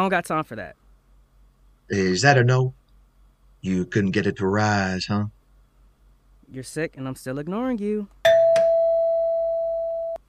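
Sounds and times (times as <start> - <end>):
speech: 0.0 - 0.8, 1.9 - 2.8, 3.6 - 5.4, 6.5 - 8.2
electronic doorbell ringing: 8.2 - 10.2.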